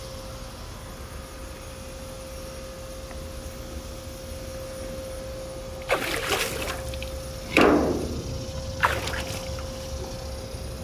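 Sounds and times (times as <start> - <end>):
steady low hum: 0.0 - 10.8
water splashed in a soaking tub on a deck: 5.8 - 10.2.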